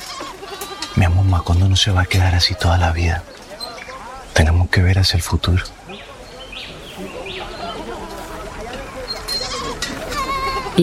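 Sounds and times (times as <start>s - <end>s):
goats bleating in a corral: 0.0s - 3.0s, 7.5s - 10.8s
indistinct voices murmuring: 0.0s - 10.8s
speech: 0.6s - 3.4s, 4.4s - 6.0s.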